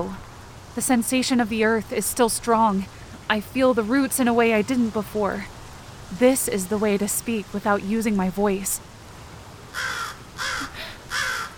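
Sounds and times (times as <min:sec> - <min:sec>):
speech: 0:00.8 - 0:08.9
crow cawing: 0:09.7 - 0:11.5.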